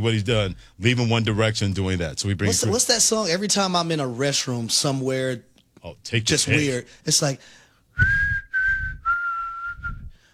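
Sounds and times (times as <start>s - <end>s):
speech: 0.0s - 8.4s
person whistling a pop song melody: 8.0s - 10.2s.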